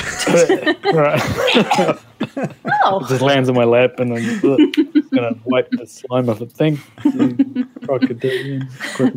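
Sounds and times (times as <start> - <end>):
laughter: 0.0 - 3.4, 4.0 - 9.1
speech: 0.3 - 9.1
person coughing and hacking: 1.2 - 2.4.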